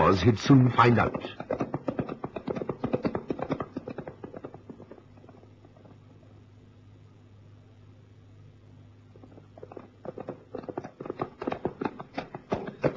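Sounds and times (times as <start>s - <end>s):
horse hooves trotting: 0.0s - 6.2s, 9.2s - 12.9s
low steady hum: 0.0s - 12.9s
speech: 0.1s - 1.6s.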